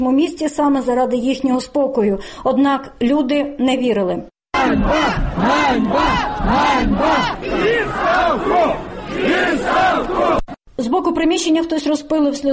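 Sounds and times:
speech: 0.0 - 12.5
large protest crowd chanting slogans: 4.6 - 10.6.

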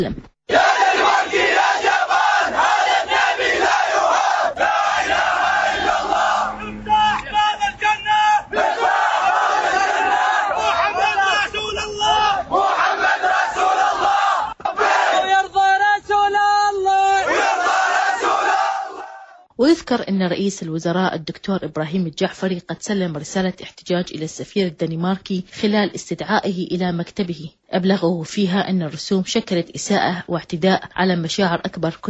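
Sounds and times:
speech: 0.0 - 0.6, 19.6 - 32.0
crowd of protesters chanting slogans at a demonstration: 0.5 - 19.5.

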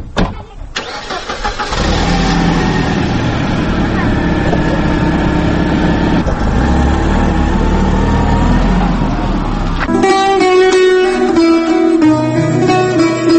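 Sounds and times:
light car engine starting up and running as car pulls away: 1.4 - 9.9
music: 9.9 - 13.3.

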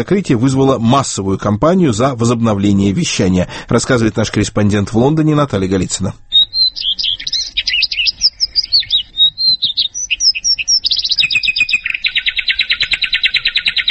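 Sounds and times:
speech: 0.0 - 6.9
bird singing chirps, whistled notes and trills: 6.2 - 13.8.

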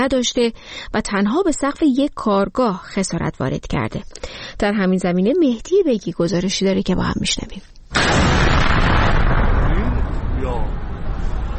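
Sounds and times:
speech: 0.0 - 8.8
explosion from a night-time drone attack in Isfahan: 8.0 - 11.5.

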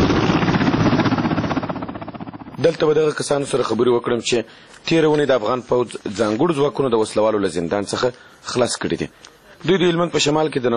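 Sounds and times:
army helicopter engine and rotor arriving at an army corps headquarters in Helmand: 0.0 - 3.7
speech: 2.6 - 10.7.

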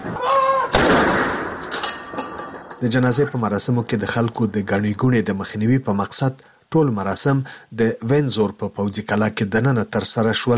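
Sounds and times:
cannon salute fired during a royal military funeral inside Windsor Castle: 0.7 - 1.8
speech: 2.8 - 10.5.

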